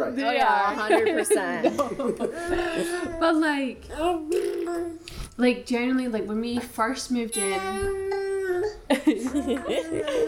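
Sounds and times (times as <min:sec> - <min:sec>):
speech: 0:00.0 - 0:08.2, 0:09.4 - 0:10.2
laughter: 0:00.7 - 0:03.1, 0:08.9 - 0:10.2
baby babbling in a home: 0:03.9 - 0:05.1, 0:07.4 - 0:10.2.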